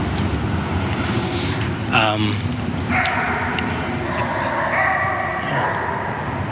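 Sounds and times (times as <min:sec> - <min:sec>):
loud rumble of passing highway traffic: 0:00.0 - 0:06.5
dog barking and yelping beneath a highway: 0:02.9 - 0:06.5.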